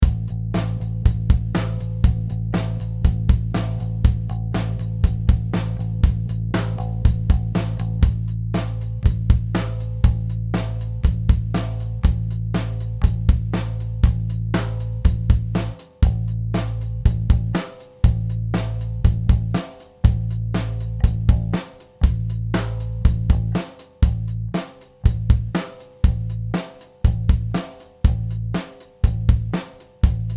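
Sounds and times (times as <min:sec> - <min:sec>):
bass rhythm pattern: 0:00.0 - 0:30.3.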